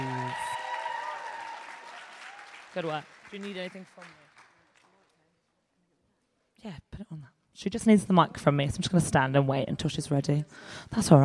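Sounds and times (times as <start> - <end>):
crowd applause: 0.0 - 5.2
speech: 2.8 - 4.2, 6.6 - 11.2.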